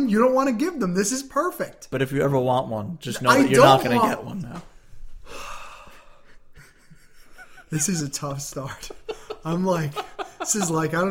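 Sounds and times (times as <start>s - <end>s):
speech: 0.0s - 4.7s, 7.7s - 11.0s
laughter: 3.2s - 4.3s, 6.6s - 11.0s
person taking a very deep breath: 5.2s - 6.5s.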